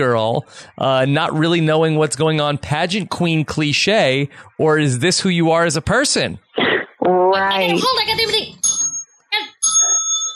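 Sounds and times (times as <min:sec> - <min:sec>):
speech: 0:00.0 - 0:06.4, 0:07.1 - 0:08.8
small bell being struck: 0:08.6 - 0:10.3.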